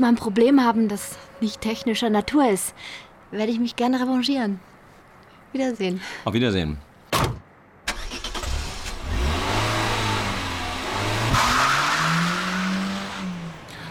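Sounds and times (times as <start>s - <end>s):
speech: 0.0s - 4.7s, 5.5s - 7.4s
car driving off fast with squealing tires: 8.0s - 13.5s.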